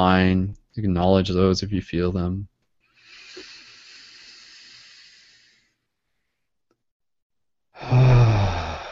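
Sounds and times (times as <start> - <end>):
speech: 0.0 - 2.5
deep breathy exhales during a guided breathing exercise: 2.9 - 6.3, 7.8 - 8.9.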